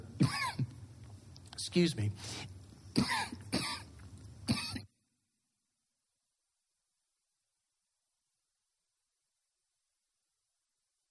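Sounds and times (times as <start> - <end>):
coughing fit of harsh raspy coughs: 0.2 - 0.7, 2.9 - 4.9
speech: 1.6 - 3.2.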